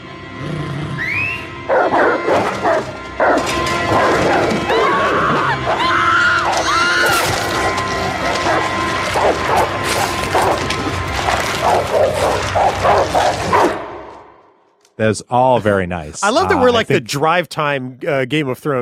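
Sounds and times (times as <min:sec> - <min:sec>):
dogs snarling and barking frantically: 0:00.3 - 0:14.2
baby's high wailing screams: 0:04.7 - 0:07.5
speech: 0:15.0 - 0:18.7.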